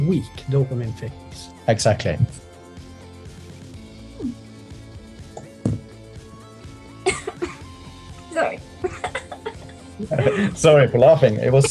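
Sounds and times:
speech: 0:00.0 - 0:02.4, 0:04.2 - 0:04.4, 0:10.0 - 0:11.6
light chuckling: 0:07.0 - 0:07.7, 0:08.8 - 0:11.6
soft restrained polite cough: 0:07.0 - 0:07.7, 0:08.8 - 0:10.6.

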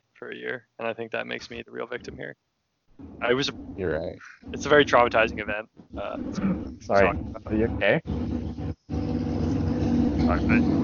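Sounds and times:
speech: 0:00.2 - 0:08.6, 0:10.3 - 0:10.8
motorcycle engine rumbling outside the house: 0:03.0 - 0:10.8.

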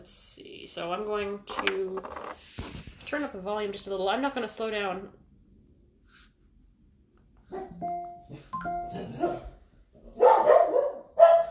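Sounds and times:
speech: 0:00.0 - 0:05.2, 0:07.5 - 0:09.5
dogs barking with higher yips and whiny tones: 0:07.5 - 0:07.8, 0:09.0 - 0:11.4.

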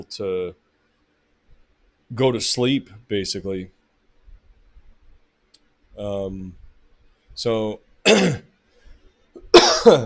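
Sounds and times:
speech: 0:00.0 - 0:00.6, 0:02.1 - 0:03.8, 0:06.0 - 0:06.6, 0:07.4 - 0:08.5, 0:09.4 - 0:10.0
person coughing: 0:08.1 - 0:08.5, 0:09.4 - 0:10.0.

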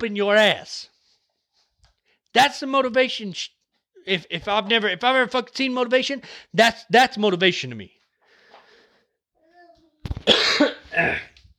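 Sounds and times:
speech: 0:00.0 - 0:00.9, 0:02.3 - 0:08.0, 0:10.2 - 0:11.3
person coughing: 0:10.1 - 0:11.4.

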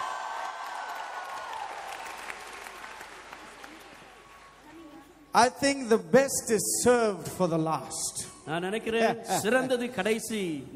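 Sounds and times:
audience at a gathering clapping hands: 0:00.0 - 0:05.0
speech: 0:05.3 - 0:10.7.

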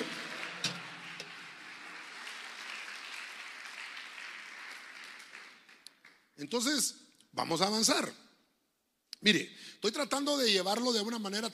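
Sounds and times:
audience clapping: 0:00.0 - 0:06.8
speech: 0:06.4 - 0:08.2, 0:09.2 - 0:11.5.

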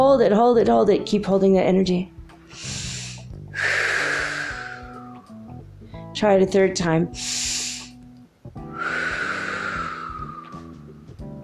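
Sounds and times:
speech: 0:00.2 - 0:02.8, 0:06.2 - 0:07.4
short sharp breath: 0:02.5 - 0:05.3, 0:07.2 - 0:08.0, 0:08.7 - 0:10.8
long breathy exhale with a thin whistling tone: 0:02.5 - 0:05.4, 0:07.2 - 0:08.0, 0:08.6 - 0:10.9.

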